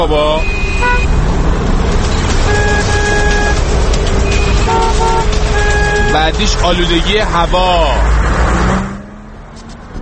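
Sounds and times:
car horns honking in short and sustained toots: 0:00.0 - 0:01.3, 0:02.2 - 0:08.0
loud steady roar of city traffic heard while driving in town: 0:00.0 - 0:09.9
speech: 0:06.2 - 0:08.2.

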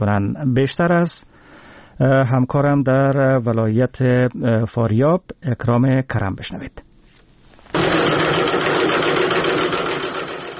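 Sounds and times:
speech: 0:00.0 - 0:01.3, 0:02.0 - 0:06.8
sewing machines running as girls sew face masks: 0:07.7 - 0:10.5.

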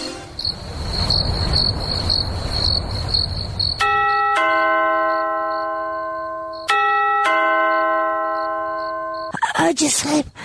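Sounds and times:
insect chirping: 0:00.3 - 0:04.3, 0:05.0 - 0:06.8, 0:07.7 - 0:09.5
doorbell ringing at the door: 0:03.8 - 0:09.3
speech: 0:10.0 - 0:10.4.

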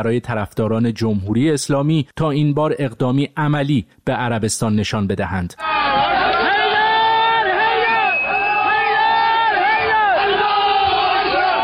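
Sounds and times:
speech: 0:00.0 - 0:06.0
crowd of attackers cheering and shouting during an attack on an embassy: 0:05.6 - 0:11.6.

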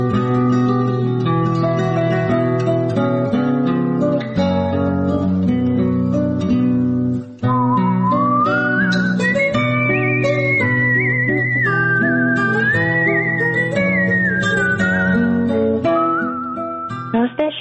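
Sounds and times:
human whistled melody: 0:00.0 - 0:02.4, 0:07.4 - 0:17.5
steady instrumental accompaniment: 0:00.0 - 0:17.5.

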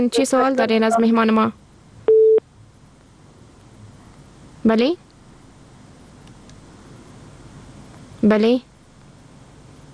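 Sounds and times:
speech: 0:00.0 - 0:01.6, 0:04.6 - 0:05.0, 0:08.2 - 0:08.7
single steady electronic tone of a cut-off phone line: 0:02.1 - 0:02.4.

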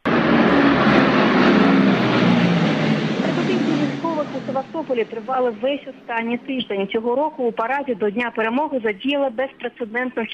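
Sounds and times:
military fighter jets roaring overhead: 0:00.0 - 0:08.0
speech: 0:05.0 - 0:10.3.

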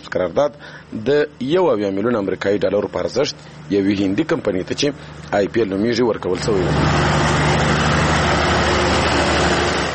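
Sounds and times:
speech: 0:00.1 - 0:07.3
diesel engines powering a small ice factory: 0:03.4 - 0:09.9.

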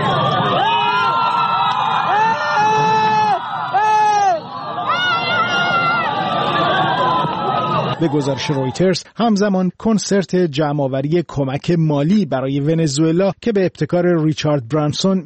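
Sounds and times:
dense crowd of supporters cheering and shouting: 0:00.0 - 0:09.0
speech: 0:08.0 - 0:15.2.

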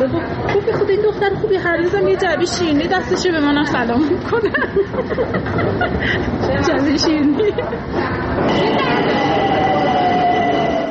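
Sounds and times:
speech: 0:00.0 - 0:09.6
rumble inside a moving metro car: 0:00.0 - 0:10.8
laughter: 0:04.2 - 0:08.3
faint high metallic squeals: 0:08.4 - 0:10.8.

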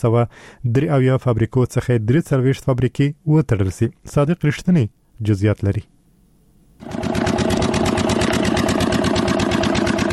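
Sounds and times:
speech: 0:00.0 - 0:06.0
generator engine powering a pipe-making factory in a Kandahar industrial park: 0:06.8 - 0:10.1.

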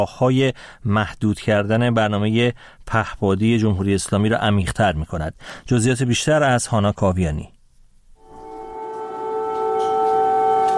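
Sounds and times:
speech: 0:00.0 - 0:07.6
air raid alert siren wailing: 0:08.2 - 0:10.7.

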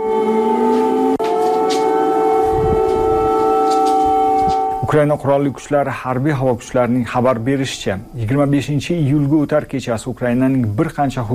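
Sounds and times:
air raid sirens wailing at night in the Ukrainian capital: 0:00.0 - 0:08.4
speech: 0:04.9 - 0:11.3.

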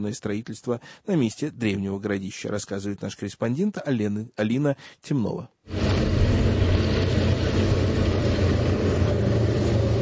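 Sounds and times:
speech: 0:00.0 - 0:06.4
KamAZ heavy truck engine running: 0:05.7 - 0:09.9.

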